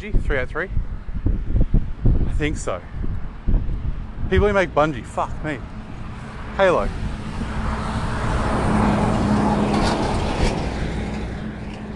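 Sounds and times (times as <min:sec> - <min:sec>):
speech: 0:00.0 - 0:01.6, 0:02.4 - 0:03.6, 0:04.3 - 0:05.8, 0:06.6 - 0:07.5
heavy truck rumbling past: 0:03.0 - 0:11.9.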